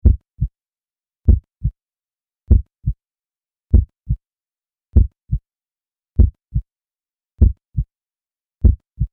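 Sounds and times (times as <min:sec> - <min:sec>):
human heartbeat: 0:00.0 - 0:00.5, 0:01.3 - 0:01.8, 0:02.5 - 0:03.0, 0:03.7 - 0:04.2, 0:05.0 - 0:05.4, 0:06.2 - 0:06.7, 0:07.4 - 0:07.9, 0:08.6 - 0:09.1.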